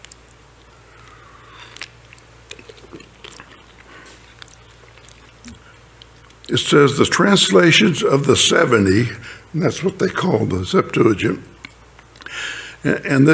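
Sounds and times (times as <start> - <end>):
person sipping water: 0.0 - 6.4
soft wet mouth clicks: 0.0 - 6.5
low steady hum: 0.0 - 13.3
speech: 6.5 - 11.5, 12.8 - 13.3.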